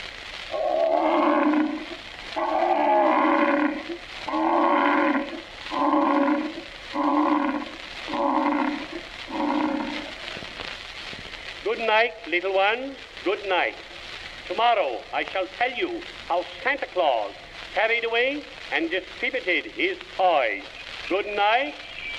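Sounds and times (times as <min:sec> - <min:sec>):
lion roaring: 0:00.5 - 0:10.1
speech: 0:12.0 - 0:13.9, 0:14.5 - 0:21.8.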